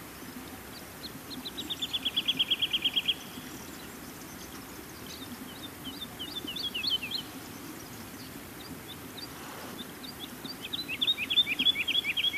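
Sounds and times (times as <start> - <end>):
woodlark song of repeated clear notes: 0.0 - 12.3.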